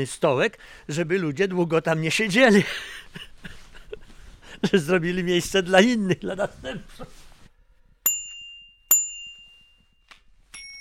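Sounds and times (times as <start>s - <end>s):
speech: 0.0s - 3.3s, 4.6s - 7.2s
bicycle bell dinging: 8.1s - 10.8s.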